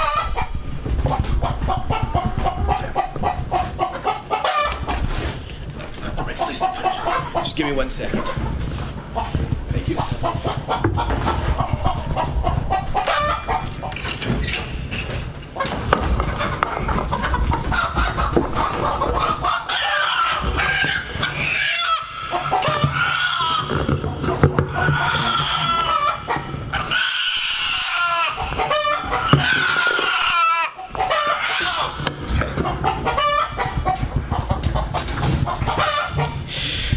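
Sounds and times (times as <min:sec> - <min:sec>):
chicken clucking: 0:00.0 - 0:36.9
chicken squawks: 0:01.4 - 0:05.0, 0:06.2 - 0:07.6, 0:10.0 - 0:13.9, 0:16.4 - 0:24.0, 0:24.7 - 0:32.0, 0:32.6 - 0:36.9
speech: 0:07.6 - 0:08.4.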